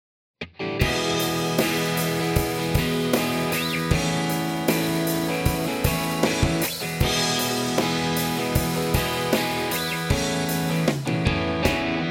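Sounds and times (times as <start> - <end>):
intro drum playing: 0.8 - 12.0.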